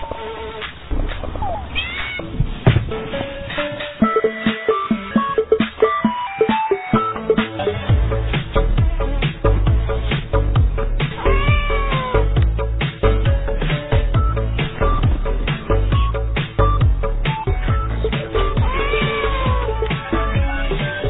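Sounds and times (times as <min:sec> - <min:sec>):
cat meowing with rising and falling cries: 0:01.5 - 0:02.2, 0:11.1 - 0:12.4, 0:18.5 - 0:19.9
rhythmic music with a steady beat and deep bass: 0:03.2 - 0:21.0.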